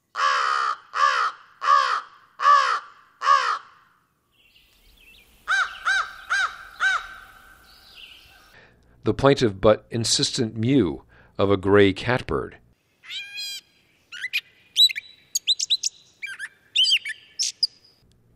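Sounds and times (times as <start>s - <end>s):
crow cawing along a trail halfway down a hill: 0.1s - 4.1s, 5.4s - 8.6s
speech: 9.0s - 13.2s.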